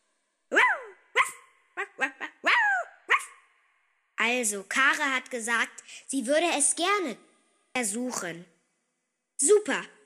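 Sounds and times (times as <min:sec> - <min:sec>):
small light-brown dachshund barking: 0:00.5 - 0:03.5
speech: 0:04.3 - 0:08.5, 0:09.4 - 0:10.0.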